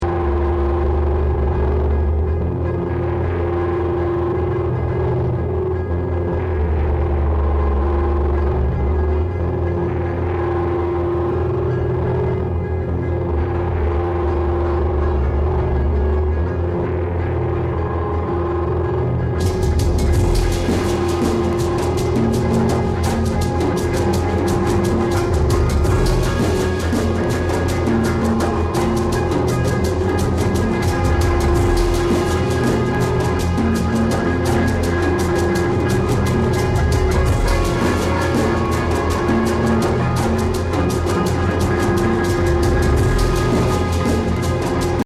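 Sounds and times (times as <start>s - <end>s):
bass drone: 0.0s - 45.0s.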